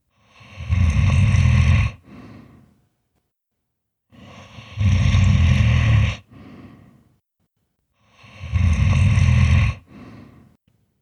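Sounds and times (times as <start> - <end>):
deep rumbling snoring echoing from deep inside a cave: 0.3 - 2.6, 4.2 - 6.4, 8.2 - 10.4.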